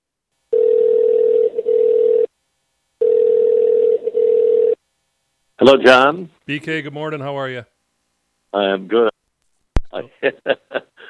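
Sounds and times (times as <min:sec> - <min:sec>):
telephone tone as a phone call is placed: 0:00.5 - 0:02.3, 0:03.0 - 0:04.8
speech: 0:05.6 - 0:07.7, 0:08.5 - 0:09.1.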